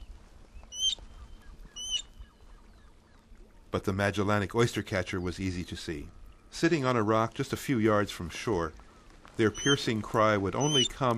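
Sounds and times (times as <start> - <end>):
lapwing calling: 0.6 - 3.2, 9.4 - 11.1
speech: 3.7 - 8.8, 9.4 - 11.1.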